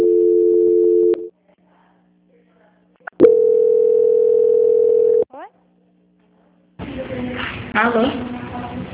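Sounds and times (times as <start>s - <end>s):
telephone tone while a call is being transferred: 0.0s - 1.3s, 3.2s - 5.3s
speech: 7.8s - 8.2s.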